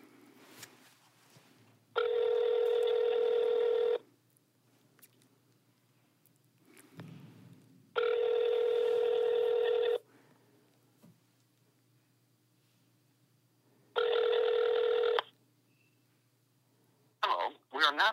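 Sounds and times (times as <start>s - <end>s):
faint room noise: 0.0s - 18.1s
phone ringback tone through a speakerphone: 2.0s - 4.0s, 8.0s - 10.0s, 14.0s - 15.3s
speech: 18.0s - 18.1s.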